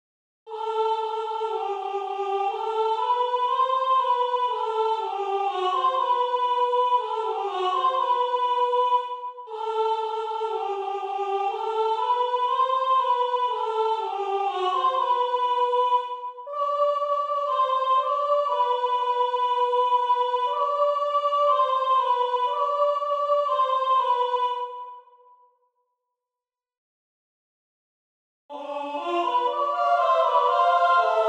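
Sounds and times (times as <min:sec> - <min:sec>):
soprano and alto voices: 0:00.5 - 0:24.9, 0:28.5 - 0:31.2.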